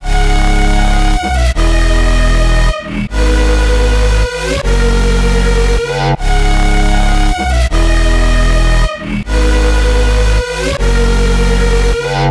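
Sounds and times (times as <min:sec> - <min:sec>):
hyperpop melody in G sharp minor: 0:00.0 - 0:12.2.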